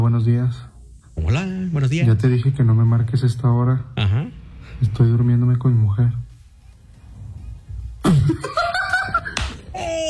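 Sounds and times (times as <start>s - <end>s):
speech: 0.0s - 6.2s, 8.3s - 8.6s
laughter: 8.1s - 9.7s
hard slap across the face: 9.3s - 9.7s.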